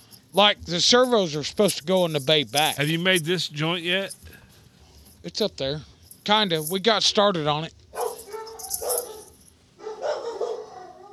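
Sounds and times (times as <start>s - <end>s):
speech: 0.4s - 4.2s, 5.2s - 7.8s
dogs barking and yelping excitedly: 7.9s - 11.1s.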